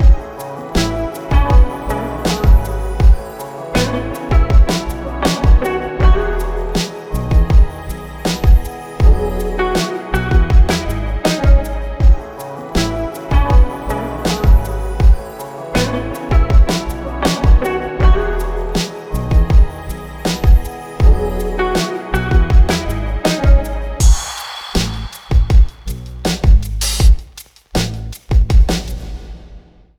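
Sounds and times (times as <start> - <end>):
rhythmic music: 0.0 - 29.2.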